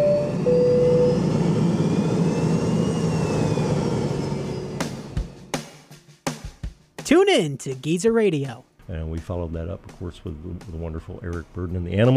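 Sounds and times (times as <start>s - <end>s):
airplane taking off with loud broad jet roar: 0.0s - 5.5s
thin airplane engine whine: 0.0s - 5.6s
speech: 7.3s - 12.1s.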